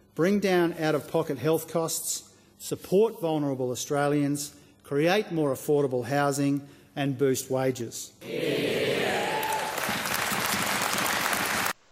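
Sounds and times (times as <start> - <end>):
speech: 0.2 - 9.0
hall audience applauding after budget speech: 9.0 - 11.9.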